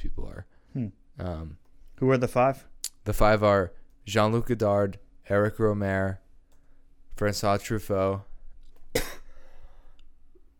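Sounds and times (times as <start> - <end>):
speech: 0.8 - 6.2, 7.2 - 8.3
person coughing: 9.0 - 9.4.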